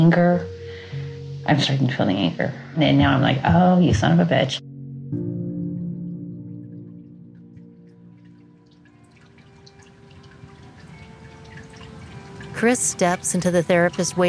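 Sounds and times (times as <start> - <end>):
speech: 0.0 - 0.5, 1.5 - 5.3, 12.6 - 14.2
small indoor waterfall fountain trickling and dripping: 8.1 - 14.2.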